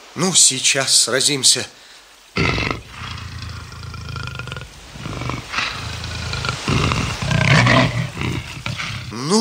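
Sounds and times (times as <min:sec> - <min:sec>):
speech: 0:00.2 - 0:01.8
lion roaring: 0:02.4 - 0:09.3.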